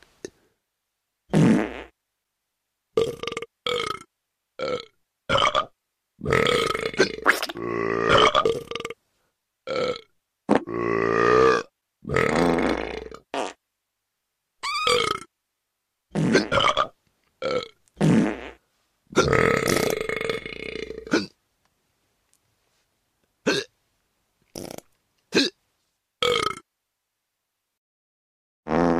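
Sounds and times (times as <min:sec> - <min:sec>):
person burping: 0:03.0 - 0:09.0, 0:09.7 - 0:13.2, 0:14.9 - 0:15.3, 0:16.1 - 0:18.4, 0:19.1 - 0:21.4, 0:23.4 - 0:23.7, 0:24.6 - 0:25.6, 0:26.2 - 0:26.7.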